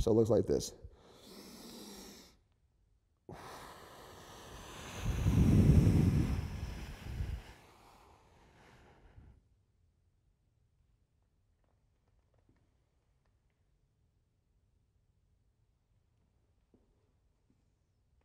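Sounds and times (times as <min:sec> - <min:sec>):
deep inhalation and forceful exhalation during a breathing exercise before a pull-up: 0:00.8 - 0:02.5, 0:03.2 - 0:09.5.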